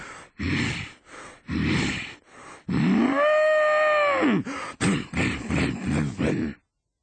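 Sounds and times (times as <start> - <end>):
rhythmic grunting huffing snorts imitating a bull: 0.4 - 3.0, 4.8 - 6.6
voice imitating an angry bull charging: 1.5 - 6.6
long drawn-out bellowing moo imitating a bull: 2.8 - 4.4.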